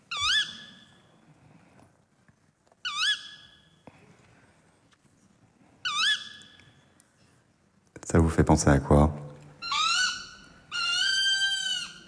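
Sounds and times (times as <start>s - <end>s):
tawny owl calling: 0.1s - 0.9s, 2.8s - 3.7s, 5.8s - 6.7s, 9.6s - 12.0s
speech: 8.1s - 9.2s.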